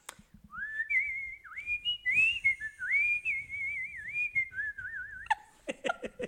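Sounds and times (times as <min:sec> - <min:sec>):
person whistling a melodic tune with vibrato: 0:00.5 - 0:05.4
laughter: 0:05.6 - 0:06.2.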